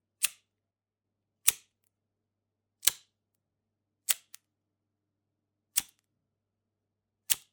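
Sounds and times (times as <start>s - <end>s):
ordinary lighter: 2.8s - 3.0s, 4.1s - 4.4s, 5.8s - 6.0s, 7.3s - 7.5s.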